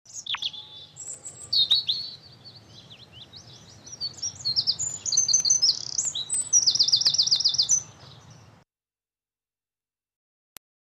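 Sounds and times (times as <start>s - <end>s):
little birds chirping: 0.1s - 8.6s.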